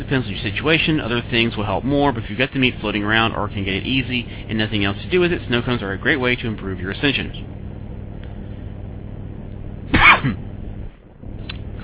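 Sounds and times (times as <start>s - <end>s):
speech: 0.1s - 7.6s
harsh loud cough: 9.9s - 10.5s.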